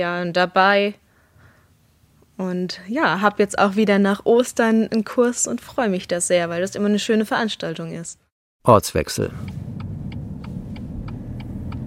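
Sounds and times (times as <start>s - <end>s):
speech: 0.0s - 1.0s, 2.4s - 9.8s
car engine rumble turning into a residential street: 8.9s - 11.8s
car turn indicator ticking: 9.2s - 11.8s.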